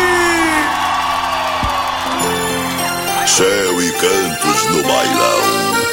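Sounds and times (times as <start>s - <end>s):
large crowd yelling and whooping: 0.0s - 3.2s
speech: 3.4s - 5.8s.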